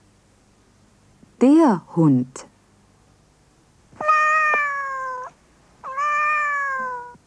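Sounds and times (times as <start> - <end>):
speech: 1.4 - 2.5
cat meowing: 4.0 - 7.2.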